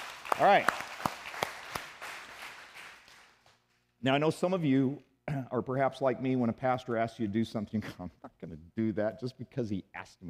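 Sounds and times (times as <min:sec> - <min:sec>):
church congregation clapping: 0:00.0 - 0:03.6
speech: 0:00.4 - 0:00.8, 0:04.0 - 0:10.2.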